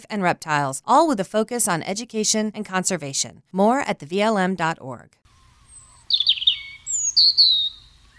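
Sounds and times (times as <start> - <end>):
speech: 0.0 - 5.2
chipping sparrow singing: 5.6 - 8.1.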